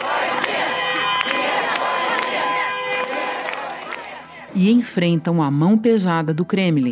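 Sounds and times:
crowd of protesters shouting against the war in the street in Russia: 0:00.0 - 0:04.6
speech: 0:04.6 - 0:06.8.

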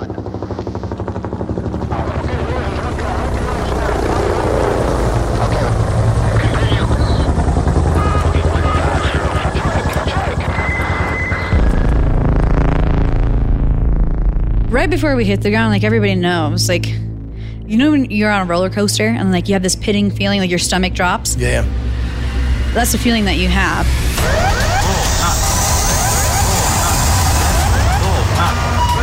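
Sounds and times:
helicopter on a mission in Afghanistan, rotor chop: 0:00.0 - 0:16.3, 0:19.9 - 0:29.0
helicopter engine whine: 0:00.0 - 0:29.0
faint tonal beeps: 0:06.9 - 0:11.6, 0:28.0 - 0:29.0
speech: 0:14.8 - 0:17.0, 0:17.7 - 0:21.9, 0:22.8 - 0:24.4.

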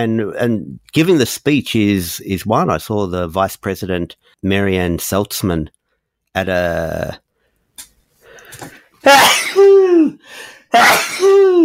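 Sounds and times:
speech: 0:00.0 - 0:07.2, 0:08.5 - 0:11.6
faint breaths: 0:07.3 - 0:09.0
person sneezing: 0:08.6 - 0:11.6.

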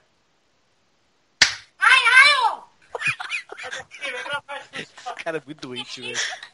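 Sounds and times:
sharp slap on a person's face: 0:01.4 - 0:01.7
laughter: 0:02.9 - 0:06.5
speech: 0:05.3 - 0:06.5.

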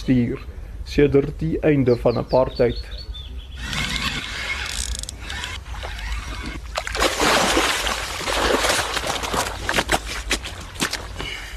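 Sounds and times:
speech: 0:00.0 - 0:03.0
angler's fishing reel clicking and whirring as a carp is wound in: 0:03.6 - 0:06.6
water splashing and sloshing as a carp is scooped into a net: 0:05.2 - 0:11.4.

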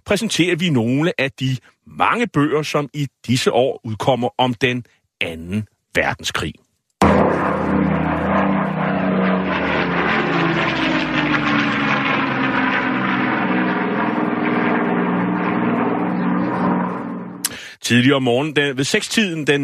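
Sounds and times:
speech: 0:00.1 - 0:06.6, 0:17.9 - 0:19.6
German Heinkel 111 piston-engined bomber flying overhead: 0:07.0 - 0:17.8.

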